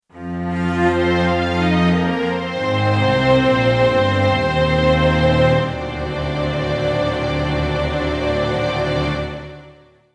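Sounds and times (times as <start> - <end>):
orchestral strings in octaves: 0.1 - 10.1.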